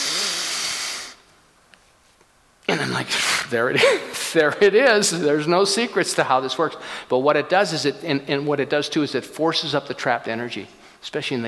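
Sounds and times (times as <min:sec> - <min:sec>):
forceful noisy breath taken as part of a breathing technique: 0:00.0 - 0:01.2
speech: 0:02.7 - 0:11.4.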